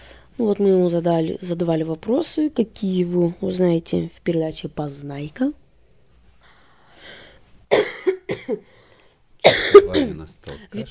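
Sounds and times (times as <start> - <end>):
speech: 0.4 - 5.6, 7.0 - 8.8, 9.5 - 10.8
person coughing: 7.7 - 8.7, 9.4 - 10.8
throat clearing: 9.5 - 10.8.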